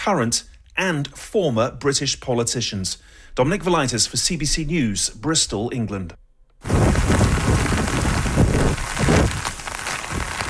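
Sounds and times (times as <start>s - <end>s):
speech: 0.0s - 7.3s
gusts of wind: 6.6s - 10.4s
heavy rain pouring: 6.6s - 10.4s.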